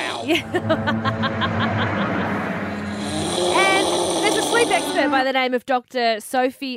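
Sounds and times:
laughter: 0.0s - 2.9s
speech: 0.2s - 2.0s, 4.5s - 6.7s
woman snoring: 2.8s - 5.2s.

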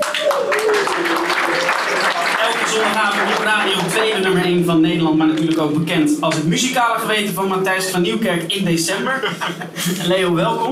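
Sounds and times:
laughter: 0.0s - 4.6s, 8.9s - 10.7s
audience applauding for an invited guest: 0.0s - 4.7s
speech: 2.8s - 10.7s.

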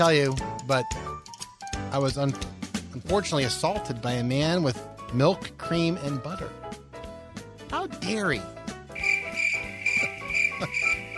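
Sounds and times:
speech: 0.0s - 1.1s, 1.9s - 6.6s, 8.0s - 8.5s
crickets chirping: 9.0s - 11.1s.

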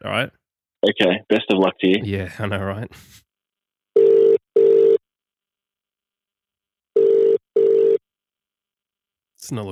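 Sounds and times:
speech: 0.0s - 3.2s, 9.4s - 9.7s
outgoing phone call ringing tone: 4.0s - 5.0s, 7.0s - 8.0s.

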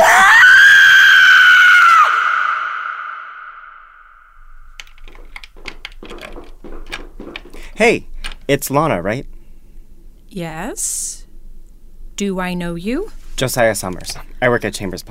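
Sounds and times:
person screaming loudly: 0.0s - 3.8s
speech: 7.8s - 9.3s, 10.3s - 11.2s, 12.2s - 15.0s.

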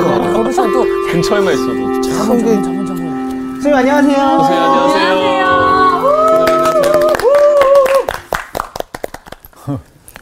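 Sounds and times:
speech: 0.6s - 3.0s, 3.6s - 5.6s
hosts cheering with high sustained whoops: 4.8s - 8.2s
hosts clapping to welcome a teacher: 6.0s - 9.8s.

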